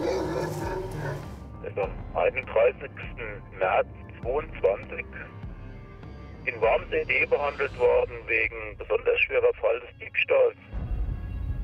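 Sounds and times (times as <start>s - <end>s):
dogs barking during a vehicle check: 0.0s - 1.4s
speech: 1.7s - 5.4s, 6.4s - 10.7s.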